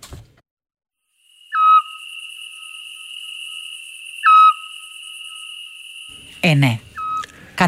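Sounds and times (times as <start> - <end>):
high-pitched insect chirring: 1.0 - 7.4
thin continuous tone: 1.0 - 7.6
scops owl whistled notes: 1.3 - 7.3
speech: 6.3 - 6.9.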